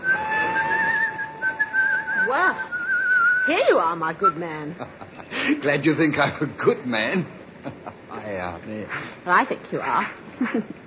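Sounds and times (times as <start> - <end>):
man whistling a tune in a train station: 0.0 - 3.7
soft murmur of station crowd noise: 0.0 - 10.8
speech: 3.4 - 10.8.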